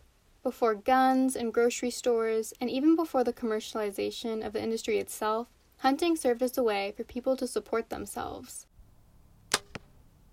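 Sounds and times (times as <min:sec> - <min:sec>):
speech: 0:00.4 - 0:08.7
arrow striking its target: 0:09.5 - 0:10.0.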